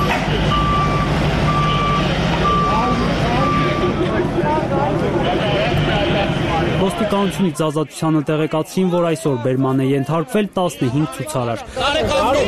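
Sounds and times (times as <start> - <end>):
tow truck reversing beeps: 0.0 - 7.8
engine and street noise on a central street: 0.0 - 12.4
speech: 7.0 - 12.4.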